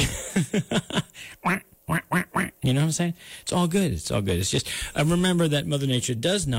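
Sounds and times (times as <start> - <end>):
laughter: 0.0 - 1.2
speech: 0.4 - 1.7, 2.7 - 6.5
duck quacking: 1.4 - 2.6.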